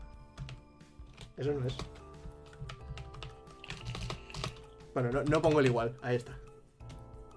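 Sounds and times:
computer keyboard typing: 0:00.4 - 0:05.8
speech: 0:01.4 - 0:02.0, 0:05.0 - 0:06.4.

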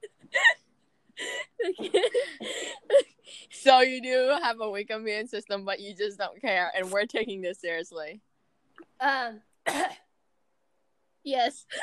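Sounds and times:
woman coughing with a throaty hack: 0:00.0 - 0:00.6, 0:01.2 - 0:03.2, 0:09.7 - 0:10.1
speech: 0:01.7 - 0:02.0, 0:03.7 - 0:08.3, 0:09.0 - 0:10.0, 0:11.2 - 0:11.8.

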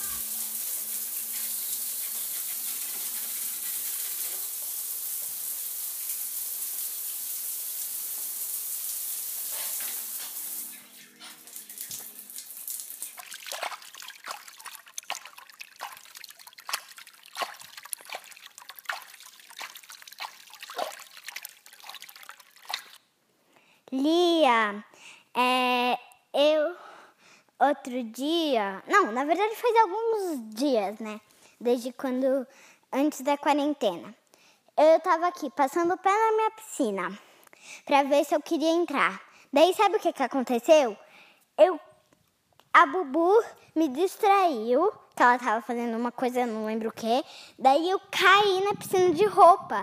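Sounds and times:
water rushing and trickling with drips and small splashes: 0:00.0 - 0:23.0
speech: 0:24.0 - 0:25.8, 0:27.6 - 0:34.2, 0:34.8 - 0:41.0, 0:41.6 - 0:41.8, 0:42.8 - 0:49.8.

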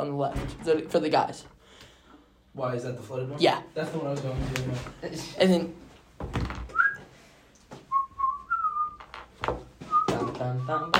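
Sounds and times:
speech: 0:00.0 - 0:01.6, 0:02.6 - 0:06.6, 0:10.4 - 0:10.9
sharp knocks and clattering thumps: 0:06.2 - 0:06.8, 0:09.0 - 0:10.9
person whistling short bright notes: 0:06.7 - 0:07.0, 0:07.9 - 0:09.0, 0:09.9 - 0:10.9.

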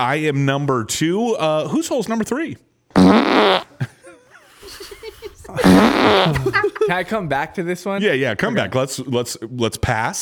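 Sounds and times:
speech: 0:00.0 - 0:03.8, 0:06.0 - 0:10.2
loud raspy fart blasts and squeaky toots: 0:03.0 - 0:03.8, 0:04.6 - 0:06.6
laughter: 0:03.8 - 0:07.7.

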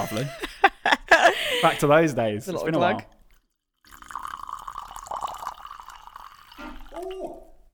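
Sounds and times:
speech: 0:00.0 - 0:00.4, 0:01.6 - 0:03.1
laughter: 0:00.0 - 0:01.9
red wine pouring from a screw-top bottle: 0:03.1 - 0:07.7.

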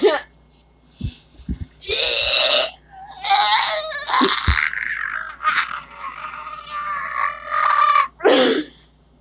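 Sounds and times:
voice imitating straining with long grunting and groaning noises: 0:01.8 - 0:08.8.

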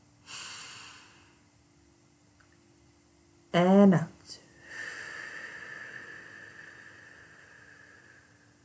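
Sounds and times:
deep breath in through the nose: 0:00.2 - 0:01.4, 0:04.6 - 0:08.6
speech: 0:03.6 - 0:04.4.

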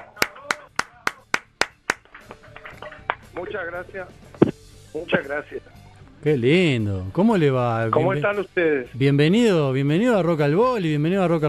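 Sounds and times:
program audience clapping: 0:00.0 - 0:03.3
speech: 0:03.4 - 0:11.4.

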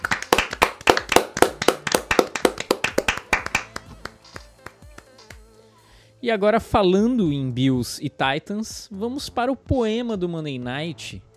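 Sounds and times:
hand clapping: 0:00.0 - 0:05.5
speech: 0:06.2 - 0:11.3.

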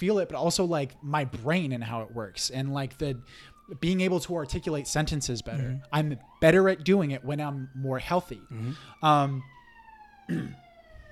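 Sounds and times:
speech: 0:00.0 - 0:09.6, 0:10.3 - 0:10.6
ambulance siren wailing past: 0:00.0 - 0:11.1.

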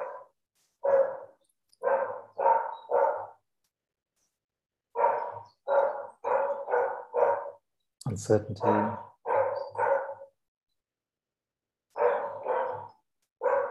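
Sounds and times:
dogs barking: 0:00.0 - 0:03.5, 0:04.9 - 0:07.7, 0:08.6 - 0:10.4, 0:11.9 - 0:13.7
speech: 0:08.1 - 0:09.1.

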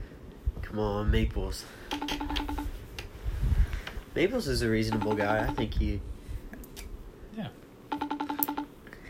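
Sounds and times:
speech: 0:00.7 - 0:02.6, 0:04.1 - 0:06.1
electronic phone keypad beeps dialing a number: 0:01.9 - 0:02.7, 0:04.9 - 0:05.8, 0:07.9 - 0:08.7.

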